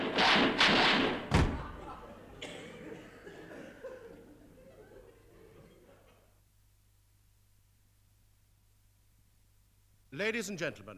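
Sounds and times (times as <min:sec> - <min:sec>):
heavy door slamming shut with a loud thud: 0:00.0 - 0:01.9
laughter: 0:01.5 - 0:06.4
speech: 0:10.2 - 0:10.9.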